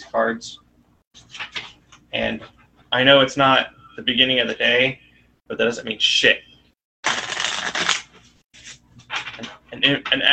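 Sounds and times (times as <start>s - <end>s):
speech: 0.1s - 0.6s, 2.1s - 6.5s, 9.4s - 10.3s
affirmation cards being shuffled by hand: 7.1s - 9.3s.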